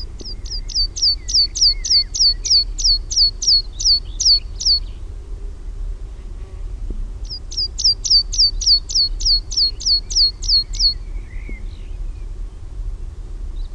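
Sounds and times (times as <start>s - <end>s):
meadow pipit song in Finland: 0.0s - 4.8s, 7.3s - 11.0s
low background hum: 0.0s - 13.7s.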